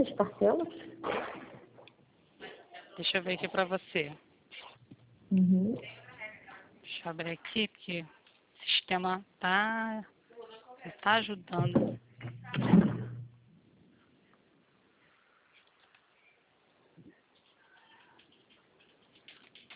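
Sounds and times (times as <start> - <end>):
speech: 0.0 - 1.5, 3.0 - 4.3, 5.3 - 6.0, 7.0 - 8.2, 8.9 - 10.1, 10.8 - 12.8
consultation room doors being shut and slammed: 11.7 - 13.2.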